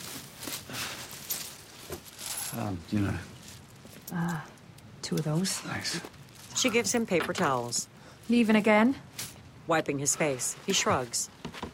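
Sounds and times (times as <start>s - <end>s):
coins clinking as handled from a bag: 1.1s - 2.7s
speech: 2.6s - 3.4s, 4.1s - 11.7s.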